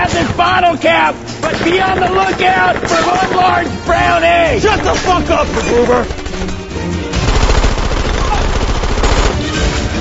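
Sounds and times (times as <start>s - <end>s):
speech: 0.4s - 6.5s
automatic gunfire from guns: 1.4s - 3.7s, 4.7s - 9.6s.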